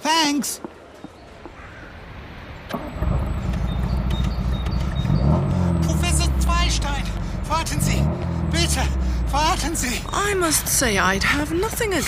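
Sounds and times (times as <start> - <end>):
street noise: 0.0 - 12.0
speech: 0.3 - 0.8, 6.7 - 12.0
sports car engine starting and revving as it accelerates away: 2.5 - 12.0.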